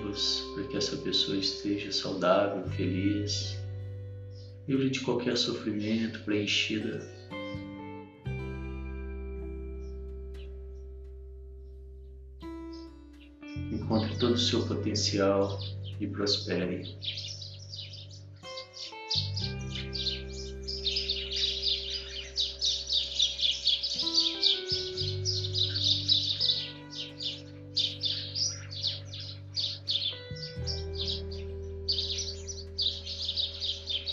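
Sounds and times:
small birds chirping: 0.0s - 34.1s
soft steady low musical drone: 0.0s - 34.1s
speech: 0.1s - 3.6s, 4.7s - 7.2s, 14.4s - 17.3s.

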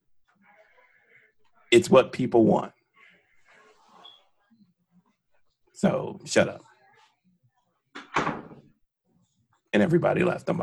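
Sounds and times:
speech: 1.7s - 2.8s, 5.8s - 6.7s, 9.7s - 10.6s
door being pushed shut: 8.0s - 8.6s.

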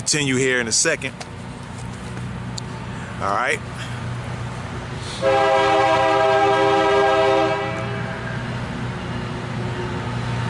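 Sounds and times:
passing work train rumbling: 0.0s - 10.4s
speech: 0.1s - 1.5s, 3.2s - 4.0s, 5.2s - 6.3s
work train horn blaring: 5.2s - 8.4s.

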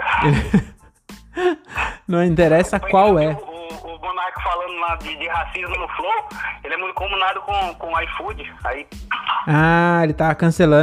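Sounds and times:
dog barking: 0.0s - 0.3s, 9.1s - 9.6s
laughter: 0.0s - 0.8s
speech: 0.2s - 0.7s, 2.1s - 3.5s, 4.4s - 10.8s.

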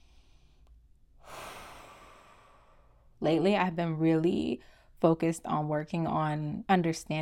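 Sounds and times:
deep airy breath: 0.0s - 3.2s
speech: 3.2s - 7.1s.

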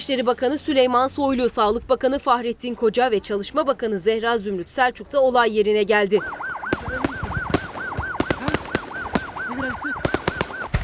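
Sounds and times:
speech: 0.0s - 7.1s
wailing siren rising and falling: 6.1s - 10.8s
fireworks exploding with sharp cracks: 6.6s - 10.8s.

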